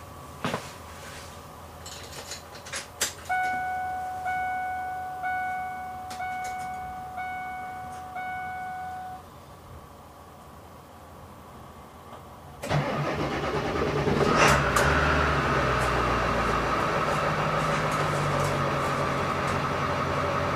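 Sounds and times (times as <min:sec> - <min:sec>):
vehicle warning chimes: 0:03.3 - 0:09.3
clicks: 0:05.4 - 0:06.9
large ambulance engine at a truck stop cranking and idling: 0:12.6 - 0:20.5.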